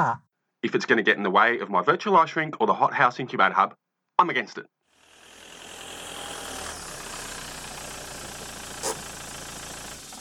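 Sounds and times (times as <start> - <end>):
speech: 0.0 - 4.8
parked car engine idling in a car park: 5.3 - 10.1.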